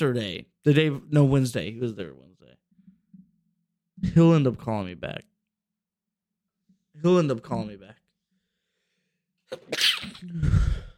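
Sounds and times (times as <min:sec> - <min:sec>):
speech: 0:00.0 - 0:02.3, 0:04.0 - 0:05.3, 0:07.0 - 0:08.0, 0:09.5 - 0:10.9
person sneezing: 0:09.5 - 0:10.9.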